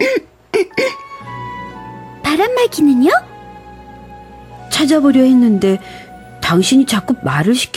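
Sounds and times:
voiced coughing: 0.0 - 1.2
speech: 2.6 - 3.3, 4.8 - 7.7.

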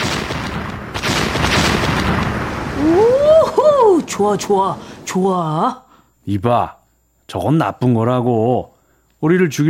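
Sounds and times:
artillery shells booming overhead: 0.0 - 5.1
speech: 4.1 - 9.6.

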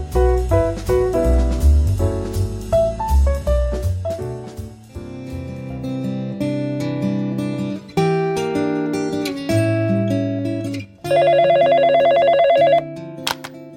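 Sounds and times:
sustained music chords: 0.0 - 10.1
telephone ringing with an electronic trill: 11.1 - 13.4.

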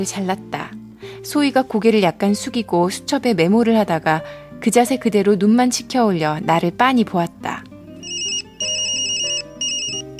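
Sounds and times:
speech: 0.0 - 7.3
phone ringtone chiming from inside a handbag: 8.0 - 10.1.

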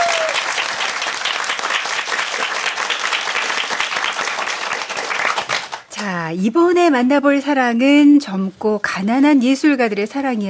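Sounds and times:
audience applause after an opera duet: 0.0 - 5.9
speech: 6.3 - 10.4.

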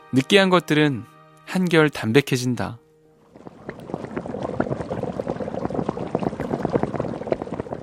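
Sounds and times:
speech: 0.1 - 2.8
soup boiling and bubbling in a pot: 3.2 - 7.8.

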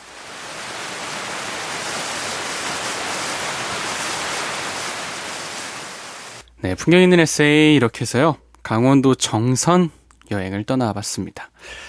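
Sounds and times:
roar of rushing water from a waterfall: 0.0 - 6.4
speech: 6.6 - 11.8.

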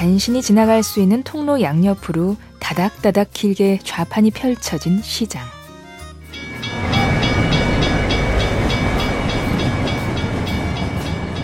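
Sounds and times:
speech: 0.0 - 5.6
faint repeating metallic ringing pulse: 6.3 - 11.4
train passing through street market on tracks: 6.3 - 11.4.

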